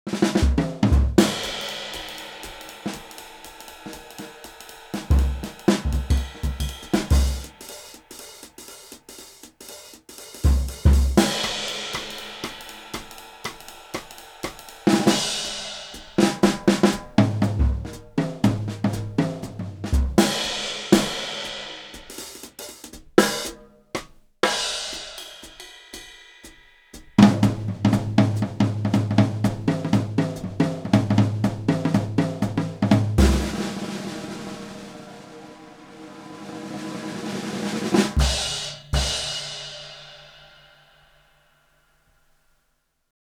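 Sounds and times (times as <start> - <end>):
jazz drums: 0.0 - 41.6.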